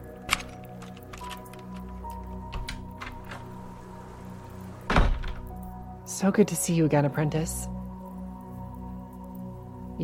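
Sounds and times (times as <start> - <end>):
unlocked door opening with a soft thunk: 0.2 - 5.6
door swinging shut with a louder thud: 4.9 - 5.5
speech: 6.2 - 7.8.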